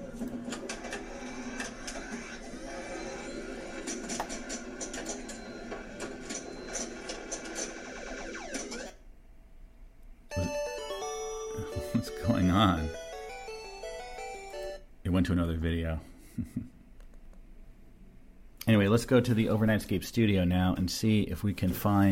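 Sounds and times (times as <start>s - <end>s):
pinball machine electronic tones and mechanical clatter: 0.0s - 9.0s, 10.3s - 14.9s
speech: 15.3s - 16.8s, 18.9s - 22.1s.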